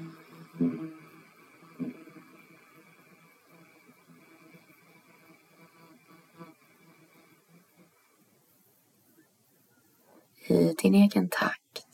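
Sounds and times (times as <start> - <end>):
low steady hummed Om chant during a guided breathing exercise: 0.0 - 5.9
speech: 10.8 - 11.6.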